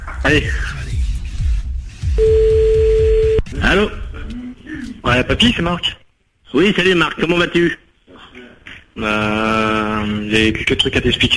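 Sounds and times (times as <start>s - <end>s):
speech: 0.2s - 0.8s, 3.5s - 4.0s, 5.0s - 7.8s, 9.0s - 11.3s
telephone line tone as a call is placed: 2.2s - 3.4s.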